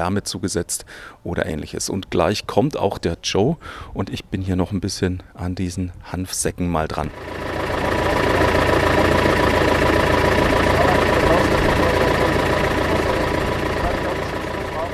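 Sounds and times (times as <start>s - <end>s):
speech: 0.0s - 7.6s
tractor engine pulling a trailer running downhill: 7.0s - 14.9s.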